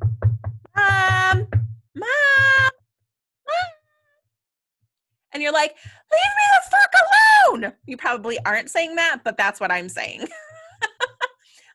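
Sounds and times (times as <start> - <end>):
knocking on a door: 0.0 - 2.7
speech: 5.4 - 10.5
laughter: 10.2 - 11.4.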